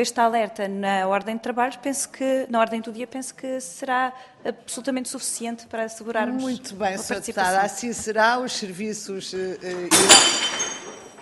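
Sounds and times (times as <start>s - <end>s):
speech: 0.0s - 10.6s
crockery breaking: 9.9s - 11.1s.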